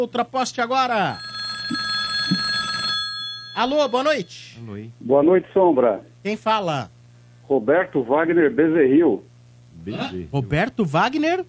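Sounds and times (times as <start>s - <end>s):
speech: 0.0s - 1.8s, 3.6s - 11.4s
telephone ringing for an incoming radio caller: 0.7s - 4.4s.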